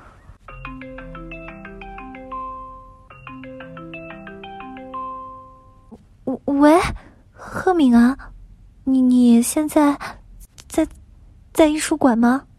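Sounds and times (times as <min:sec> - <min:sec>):
phone call ringback tone, short bright electronic melody: 0:00.4 - 0:06.0
speech: 0:06.3 - 0:08.2, 0:08.8 - 0:10.2, 0:10.8 - 0:11.0, 0:11.6 - 0:12.5.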